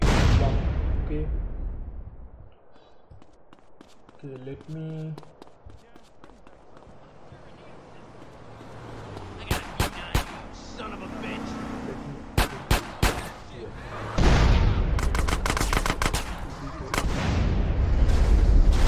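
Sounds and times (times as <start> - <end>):
speech: 1.1 - 1.5, 4.2 - 5.3
video game gunfire: 9.4 - 10.5, 12.3 - 13.4, 14.2 - 18.8.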